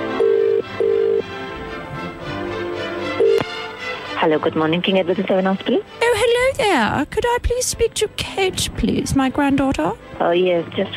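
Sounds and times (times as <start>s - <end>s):
electronic ringing tone on a telephone line: 0.0s - 1.2s, 3.2s - 3.4s
speech: 4.2s - 10.9s.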